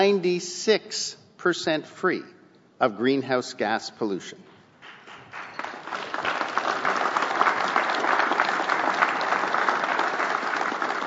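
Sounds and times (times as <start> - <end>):
speech: 0.0 - 4.5
audience applause: 4.8 - 11.0.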